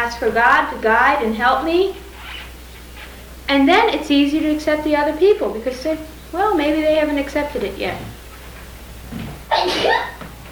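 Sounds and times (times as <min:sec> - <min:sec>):
speech: 0:00.1 - 0:02.0, 0:03.5 - 0:08.2
small cute sneeze: 0:09.5 - 0:10.2.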